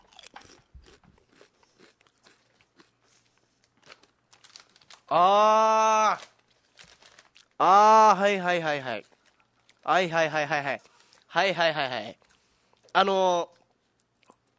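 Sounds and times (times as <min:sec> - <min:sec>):
biting and chewing crunchy sauce flavored snack chips: 0:00.0 - 0:05.2, 0:06.2 - 0:07.6, 0:08.9 - 0:09.9, 0:12.1 - 0:14.5
speech: 0:05.1 - 0:06.3, 0:07.6 - 0:09.1, 0:09.8 - 0:12.2, 0:13.0 - 0:13.6.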